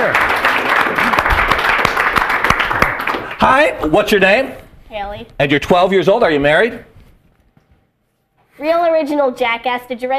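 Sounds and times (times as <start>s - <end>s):
crowd applauding: 0.0s - 3.6s
speech: 3.4s - 6.9s, 8.6s - 10.1s.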